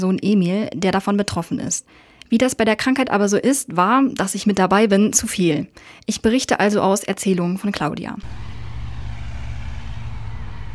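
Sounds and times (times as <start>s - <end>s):
speech: 0.0s - 8.6s
road traffic on the street heard from a school parking lot in Hameln, Germany: 8.2s - 10.7s.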